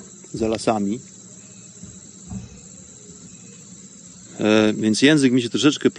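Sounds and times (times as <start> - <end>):
cicadas droning in the evening: 0.0 - 5.9
speech: 0.3 - 1.2, 4.4 - 5.9
soft low thumps: 1.7 - 2.8.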